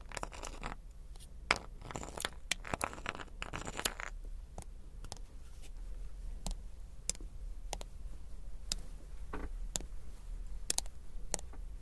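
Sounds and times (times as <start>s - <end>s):
hard little crystals and beads clattering: 0.0s - 0.8s, 1.5s - 4.2s
low steady hum: 0.0s - 11.7s.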